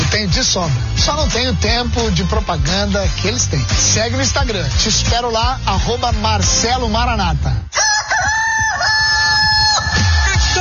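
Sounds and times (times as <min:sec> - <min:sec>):
speech: 0:00.2 - 0:08.3
rooster crowing: 0:07.7 - 0:10.3.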